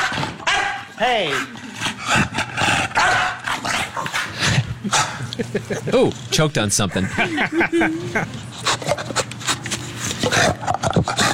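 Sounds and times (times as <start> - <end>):
animal barking and growling during play: 0.0 - 5.3, 8.6 - 11.3
speech: 1.0 - 1.7, 5.4 - 9.1
laughter: 4.7 - 8.6.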